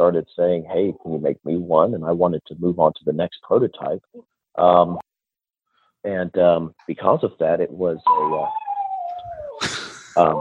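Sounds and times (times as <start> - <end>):
speech: 0.0 - 5.1, 6.0 - 8.6, 9.6 - 10.3
female dog with a broken toe giving a high whining yelp: 8.0 - 9.6
female dog with a broken toe howling: 8.0 - 9.6, 10.2 - 10.3.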